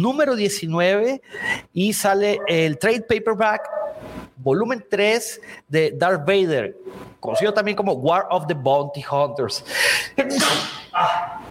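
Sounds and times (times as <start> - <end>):
speech: 0.0 - 11.3
harsh breathy exhalations: 1.2 - 1.7, 9.7 - 11.3
allergy-caused sneeze: 10.3 - 11.4.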